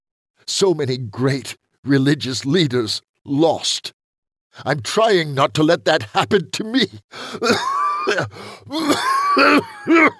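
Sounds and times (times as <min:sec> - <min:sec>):
speech: 0:00.5 - 0:04.0, 0:04.6 - 0:10.1
man's dry raspy cough: 0:07.2 - 0:10.1.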